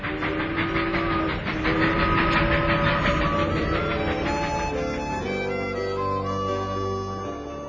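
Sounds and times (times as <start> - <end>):
train rolling along the rails with rhythmic clatter: 0.0 - 7.6
sustained tonal whistle-like notes: 0.4 - 7.6.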